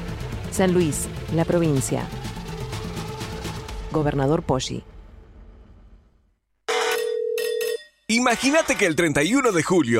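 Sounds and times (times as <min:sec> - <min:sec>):
speech: 0:00.6 - 0:02.2, 0:03.9 - 0:04.9, 0:08.1 - 0:09.9
telephone bell ringing with a sharp metallic ring: 0:06.7 - 0:09.0.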